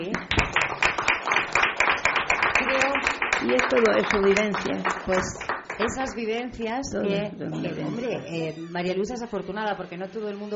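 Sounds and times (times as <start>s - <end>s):
rhythmic clapping: 0.0s - 6.7s
speech: 3.4s - 10.5s.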